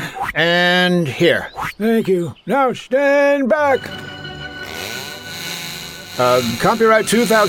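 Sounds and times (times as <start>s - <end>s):
speech: 0.3s - 4.1s, 6.2s - 7.4s
chainsaw engine idling and revving: 4.6s - 7.4s.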